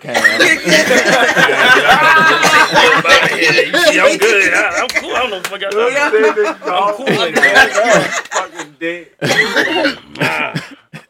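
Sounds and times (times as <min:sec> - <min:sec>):
raspy throat clearing: 0:00.0 - 0:00.6, 0:09.2 - 0:11.0
speech: 0:00.0 - 0:01.6, 0:04.1 - 0:10.0
laughter: 0:00.0 - 0:11.0
harsh coughs: 0:00.1 - 0:00.6, 0:09.2 - 0:11.0.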